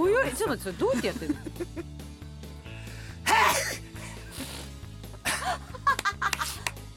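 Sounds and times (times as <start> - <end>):
speech: 0.3 - 2.0
person sneezing from tickled nose: 3.2 - 4.7
person laughing: 5.2 - 6.7.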